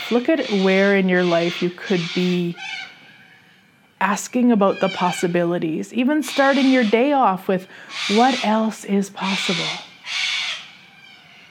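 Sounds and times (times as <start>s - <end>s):
harsh raspy bird call outdoors in Australia: 0.0s - 3.8s, 6.2s - 11.5s
speech: 0.1s - 2.9s, 4.0s - 10.3s.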